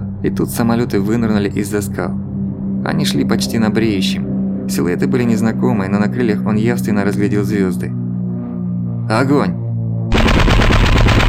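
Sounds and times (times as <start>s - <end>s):
speech: 0.2s - 8.0s, 9.1s - 9.6s
automatic gun firing from a boat: 10.1s - 11.2s.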